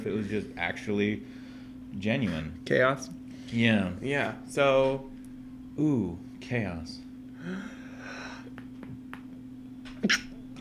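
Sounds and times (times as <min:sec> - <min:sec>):
speech: 0:00.0 - 0:05.1, 0:05.8 - 0:08.2, 0:10.0 - 0:10.3
low electrical hum: 0:00.0 - 0:10.5
person sneezing: 0:10.0 - 0:10.4.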